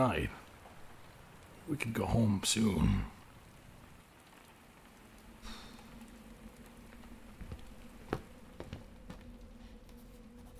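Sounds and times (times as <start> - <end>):
speech: 0.0 - 0.4, 1.7 - 3.2
soft steady rain pattering on a roof: 0.0 - 10.5
taps and drips of rain: 0.0 - 10.5.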